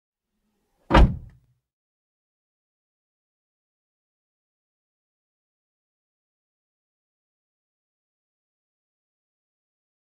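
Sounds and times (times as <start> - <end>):
car hood: 0.9 - 1.4.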